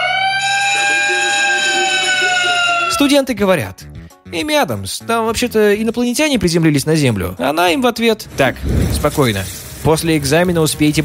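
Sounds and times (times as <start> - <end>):
siren blaring during an exam in a classroom: 0.0 - 3.2
speech: 3.0 - 11.0.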